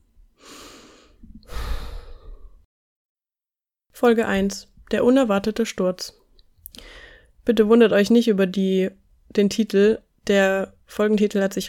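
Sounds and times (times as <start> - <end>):
deep breath in and out: 0.4 - 2.7, 6.8 - 7.4
speech: 4.0 - 6.2, 7.4 - 11.6.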